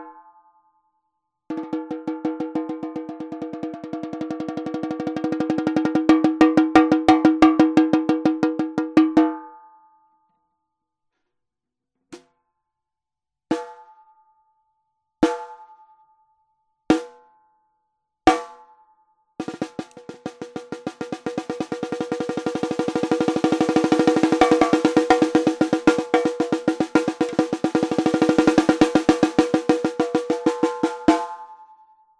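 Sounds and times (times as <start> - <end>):
maple 10x5 snare drum: 1.5 - 9.2, 19.4 - 31.5.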